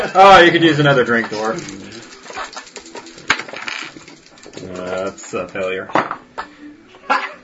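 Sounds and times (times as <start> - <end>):
speech: 0.1 - 2.0, 4.6 - 6.2
dice rolling on a hard tabletop: 1.2 - 6.2.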